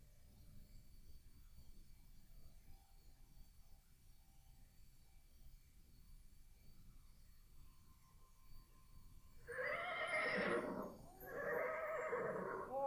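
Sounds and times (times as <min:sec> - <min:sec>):
horse whinnying with shrill neigh and breathy snorts: 0:09.5 - 0:12.7.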